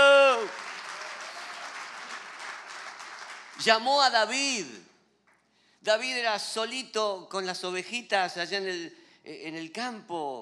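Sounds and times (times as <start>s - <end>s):
audience applause with many hands clapping: 0.0s - 3.6s
speech: 3.6s - 4.9s, 5.8s - 10.4s.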